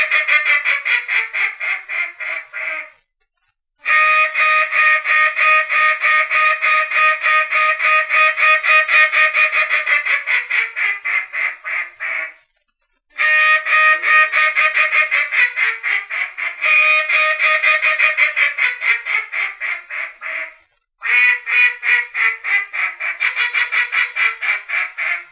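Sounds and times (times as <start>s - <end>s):
Mallard quacking: 0.0s - 3.0s, 3.9s - 12.4s, 13.2s - 25.3s.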